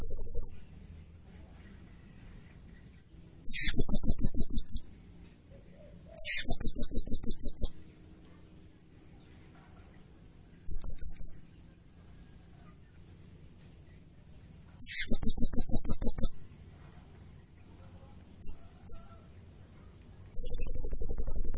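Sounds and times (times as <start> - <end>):
blue-crowned hanging parrot giving sharp high-pitched pulsed trills: 0.0 - 0.7, 3.4 - 7.9, 10.0 - 12.8, 14.7 - 16.4, 18.4 - 19.3, 20.3 - 21.5.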